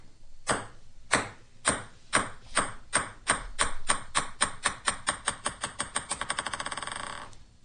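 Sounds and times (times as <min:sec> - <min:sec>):
ping pong ball bouncing on a hard surface: 0:00.5 - 0:07.4.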